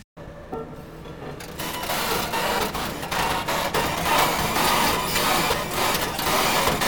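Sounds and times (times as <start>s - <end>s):
construction machine grinding and clattering: 1.4s - 6.8s.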